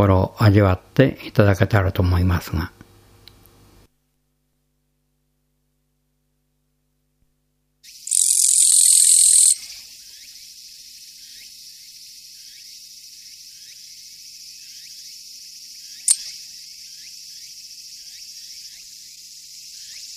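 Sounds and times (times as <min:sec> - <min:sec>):
speech: 0:00.0 - 0:02.8
soft background insect chirps: 0:07.8 - 0:20.1
Japanese katydid kirigirisu rasping buzz: 0:07.9 - 0:20.1
brief click: 0:16.1 - 0:16.4.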